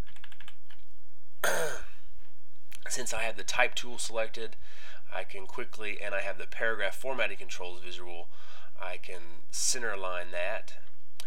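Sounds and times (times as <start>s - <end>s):
typing on a computer keyboard: 0.0s - 0.8s
speech: 2.9s - 10.9s.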